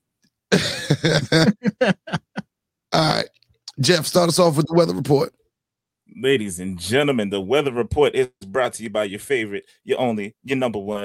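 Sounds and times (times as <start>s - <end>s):
person clearing throat: 0.5s - 1.7s
speech: 0.5s - 2.2s, 3.0s - 5.4s, 6.2s - 11.0s
laughter: 0.5s - 2.4s.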